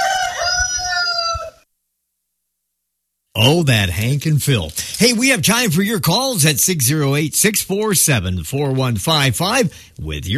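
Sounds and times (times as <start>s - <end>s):
rooster crowing: 0.0s - 1.7s
speech: 3.4s - 10.3s.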